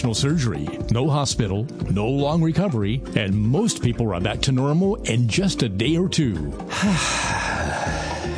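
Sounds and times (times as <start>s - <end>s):
speech: 0.0s - 7.5s
deep breath in through the nose: 6.7s - 8.3s.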